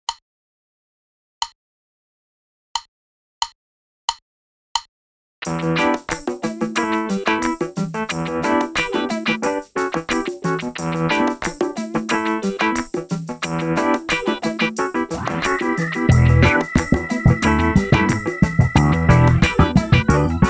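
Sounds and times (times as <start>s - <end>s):
funk music: 5.5s - 20.4s.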